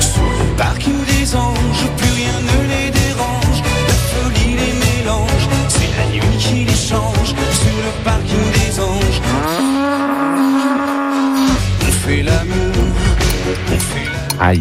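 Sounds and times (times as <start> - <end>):
pop song playing: 0.0 - 14.5
cow mooing: 9.2 - 11.7.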